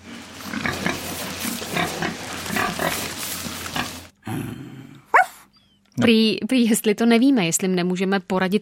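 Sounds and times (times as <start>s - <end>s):
pig grunting and snorting: 0.4s - 5.1s
speech: 6.0s - 8.6s.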